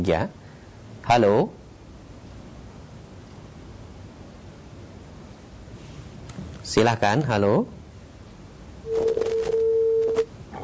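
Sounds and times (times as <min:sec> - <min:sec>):
speech: 0:00.0 - 0:00.4, 0:01.1 - 0:01.6, 0:06.7 - 0:07.8
faint clicks and telephone line noise: 0:08.2 - 0:10.3
steady telephone line tone on a phone-in line: 0:08.8 - 0:10.3.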